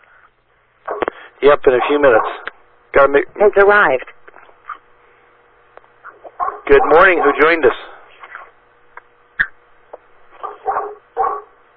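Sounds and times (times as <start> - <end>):
dog barking and yapping: 0.8 - 1.2, 1.8 - 2.5, 6.0 - 7.6, 10.4 - 11.6
speech: 1.4 - 4.1, 6.7 - 7.9.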